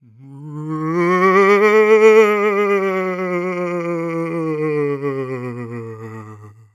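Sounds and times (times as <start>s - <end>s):
horror ghost vampire moaning: 0.0s - 6.7s.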